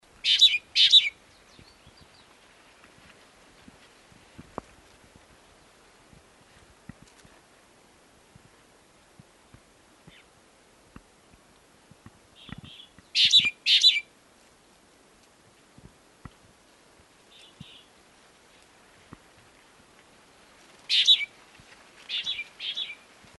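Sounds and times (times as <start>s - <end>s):
small ground finch: 0.2s - 2.4s, 12.4s - 14.1s, 17.3s - 17.9s, 20.9s - 21.3s, 22.1s - 23.0s.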